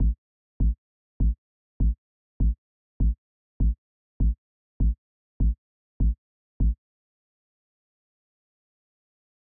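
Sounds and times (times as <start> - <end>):
big kick drum: 0.0 - 6.8.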